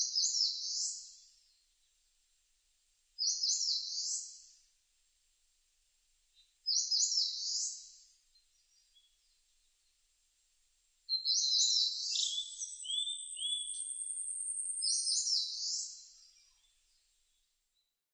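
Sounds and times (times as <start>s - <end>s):
Eastern crowned warbler singing a short high buzzy phrase: 0.0s - 1.6s, 3.2s - 4.5s, 6.4s - 9.9s, 11.1s - 17.9s.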